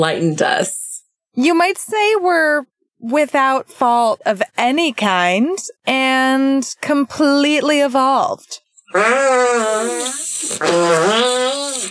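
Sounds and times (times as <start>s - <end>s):
speech: 0.0s - 0.8s, 1.4s - 11.8s
hand fart: 8.9s - 11.8s.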